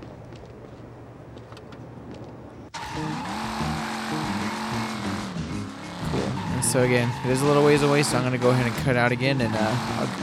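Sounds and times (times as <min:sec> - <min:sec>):
stolen gang car engine revving: 0:02.7 - 0:10.2
tires squealing: 0:02.7 - 0:10.2
speech: 0:06.7 - 0:10.2.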